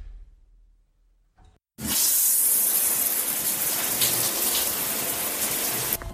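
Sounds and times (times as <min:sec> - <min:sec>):
shower water spraying and running: 0:01.8 - 0:06.0.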